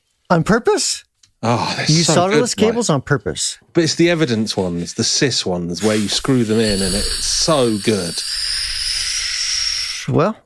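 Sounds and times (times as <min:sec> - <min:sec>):
speech: 0:00.3 - 0:08.6, 0:10.1 - 0:10.4
air hissing out: 0:05.8 - 0:10.2.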